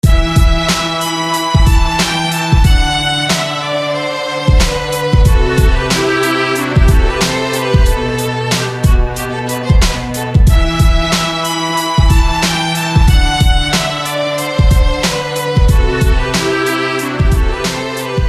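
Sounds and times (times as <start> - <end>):
violin playing: 0.0 - 18.2.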